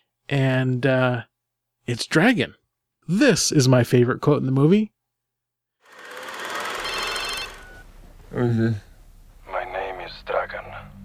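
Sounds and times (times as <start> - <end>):
speech: 0.3 - 1.3, 1.9 - 5.0, 8.3 - 8.9
cell phone ringing in a film scene: 5.9 - 8.0.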